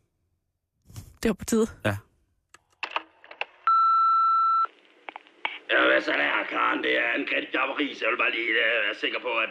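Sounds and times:
speech: 1.2 - 2.1, 6.0 - 9.5
answering machine beep before message playback: 3.7 - 4.7.

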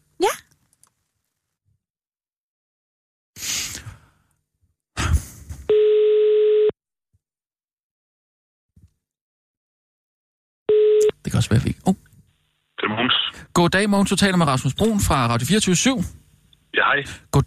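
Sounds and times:
telephone ringback tone during an outgoing call: 5.7 - 6.7, 10.7 - 11.1
speech: 11.4 - 12.1, 12.8 - 16.2, 16.8 - 17.4.

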